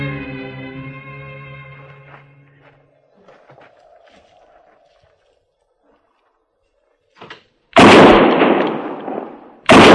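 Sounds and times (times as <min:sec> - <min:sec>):
gunshots aimed at an antelope: 0:07.7 - 0:09.9.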